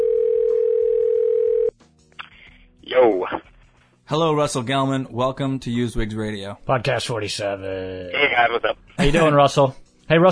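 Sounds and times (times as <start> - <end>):
telephone dial tone while placing a call: 0.0 - 1.7
speech: 3.0 - 3.5, 4.1 - 10.3.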